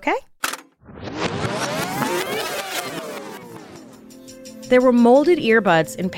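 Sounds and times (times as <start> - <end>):
speech: 0.0 - 0.3, 4.7 - 6.1
dead car engine straining and whirring as it tries to start: 0.5 - 4.3.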